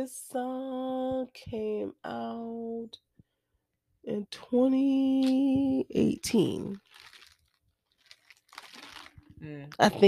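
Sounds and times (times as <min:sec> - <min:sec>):
speech: 0:00.0 - 0:03.1, 0:04.0 - 0:07.1, 0:09.4 - 0:10.0
person crunching on ice: 0:06.7 - 0:09.3.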